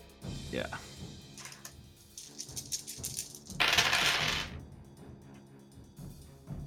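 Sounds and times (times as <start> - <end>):
speech: 0.5 - 0.9
six dice clattering across a hard surface: 1.4 - 4.6.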